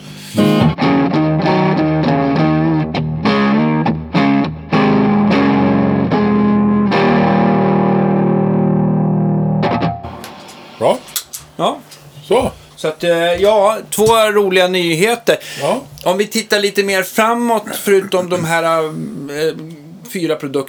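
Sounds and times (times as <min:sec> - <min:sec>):
distorted electric guitar through amp with high presence: 0:00.0 - 0:10.9
speech: 0:12.4 - 0:20.6.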